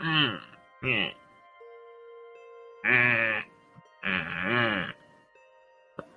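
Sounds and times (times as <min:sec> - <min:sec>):
voice imitating a woman whimpering as she regains consciousness: 0:00.0 - 0:01.2, 0:02.8 - 0:05.0.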